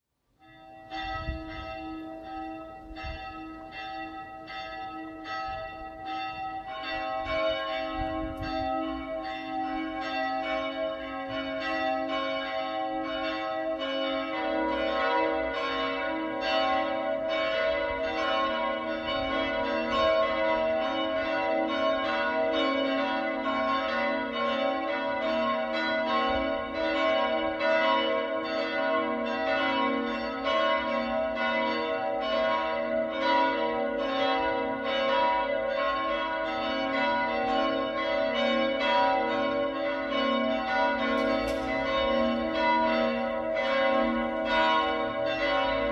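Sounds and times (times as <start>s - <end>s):
cathedral bells partial peal on G sharp: 0.3s - 45.9s.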